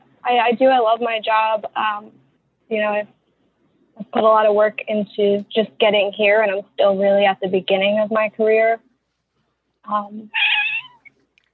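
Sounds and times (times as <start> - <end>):
speech: 0.3 - 3.2, 4.0 - 8.9, 9.8 - 10.4
cat meowing loudly: 10.3 - 11.1.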